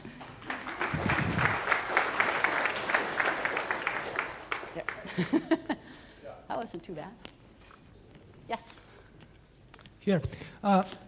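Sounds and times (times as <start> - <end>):
audience applauding: 0.0 - 5.5
laughter: 5.0 - 6.0
speech: 5.2 - 5.8, 6.6 - 7.3, 10.0 - 11.0.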